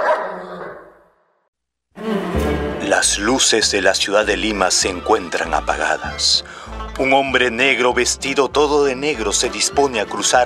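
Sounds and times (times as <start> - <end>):
dog barking: 0.0 - 0.4
speech: 2.9 - 10.4.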